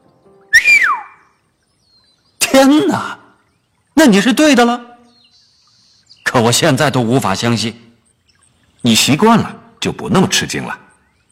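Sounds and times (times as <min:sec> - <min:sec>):
falling surprised whistle from a man: 0:00.5 - 0:01.2
speech: 0:02.6 - 0:03.2, 0:04.0 - 0:04.9, 0:06.4 - 0:07.9, 0:08.8 - 0:10.8.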